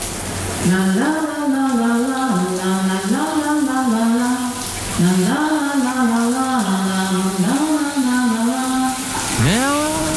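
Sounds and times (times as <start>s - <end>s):
shower running with a steady hiss of spraying water: 0.0s - 10.1s
person humming or singing a wordless melody: 9.3s - 10.1s.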